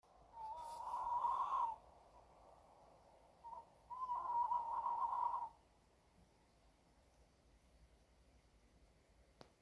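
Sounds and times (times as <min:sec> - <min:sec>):
owl hooting: 0:00.3 - 0:01.9, 0:03.4 - 0:05.7.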